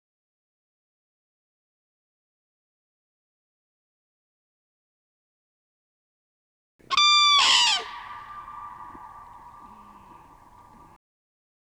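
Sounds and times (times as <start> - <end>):
Common crane giving a loud rich trumpeting call: 6.9 - 11.0.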